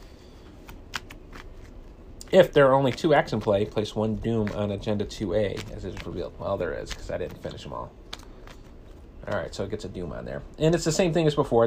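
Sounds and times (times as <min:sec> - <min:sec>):
low hum: 0:00.0 - 0:11.6
riffle of playing cards being shuffled: 0:00.5 - 0:09.6
sharper snap of playing cards: 0:00.6 - 0:01.7, 0:04.4 - 0:04.7, 0:05.4 - 0:06.2, 0:06.8 - 0:08.6
speech: 0:02.3 - 0:08.0, 0:09.2 - 0:11.6.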